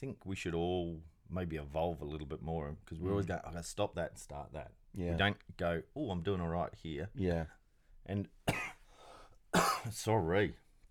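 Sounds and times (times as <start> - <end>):
speech: 0.0 - 8.7, 9.8 - 10.6
cough: 8.4 - 8.9, 9.5 - 10.1.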